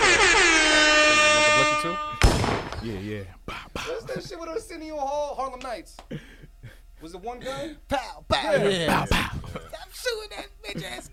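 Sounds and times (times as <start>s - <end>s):
loud blaring air horn blast: 0.0s - 2.5s
speech: 2.8s - 6.3s, 7.0s - 11.1s
laughter: 3.5s - 4.6s, 8.4s - 11.1s.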